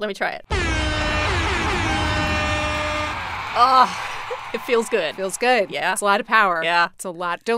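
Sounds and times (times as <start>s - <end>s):
speech: 0.0s - 1.1s, 3.6s - 7.5s
loud sustained air horn blast: 0.5s - 5.6s.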